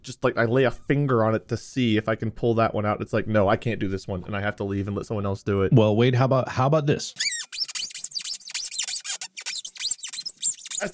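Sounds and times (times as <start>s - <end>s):
speech: 0.0s - 7.6s
styrofoam-like object squeaking when rubbed: 7.2s - 10.9s.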